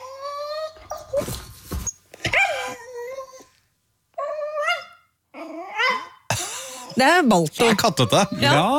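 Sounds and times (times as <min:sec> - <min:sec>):
dog grumbling and whining in cat-like mewling tones: 0:00.0 - 0:01.4, 0:02.2 - 0:06.3, 0:08.0 - 0:08.7
speech: 0:01.1 - 0:01.4, 0:07.0 - 0:08.7.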